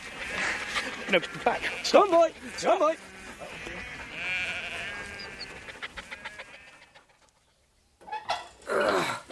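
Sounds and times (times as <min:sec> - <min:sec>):
sheep bleating: 0:00.0 - 0:07.0
speech: 0:01.1 - 0:03.1.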